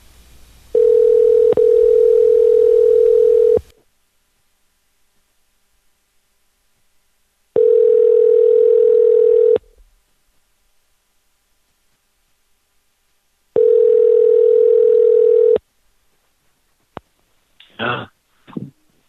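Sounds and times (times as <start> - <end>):
ringback tone of an outgoing phone call with caller ID blocked: 0.7 - 3.6, 7.6 - 9.6, 13.6 - 15.6
person speaking briefly: 17.6 - 18.8.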